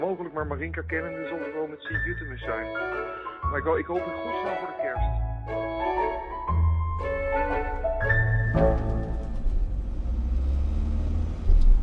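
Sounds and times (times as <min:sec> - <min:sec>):
speech: 0:00.1 - 0:06.2
changing tonal hum: 0:05.5 - 0:10.1
bus engine rumbling while driving: 0:05.5 - 0:11.8.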